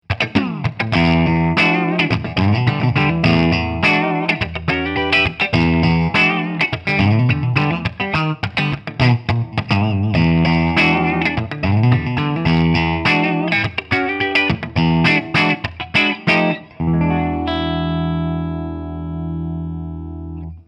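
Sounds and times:
clean Gibson LP 50s guitar on both pickups: 0.0s - 20.6s.

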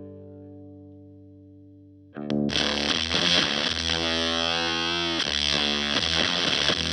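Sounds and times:
evil filter fuzz and filter loop: 2.3s - 6.9s.

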